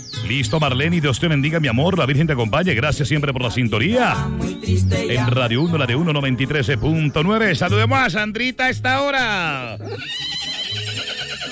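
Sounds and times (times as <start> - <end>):
speech: 0.2 - 10.6
mare neighing on a farm: 9.7 - 11.5.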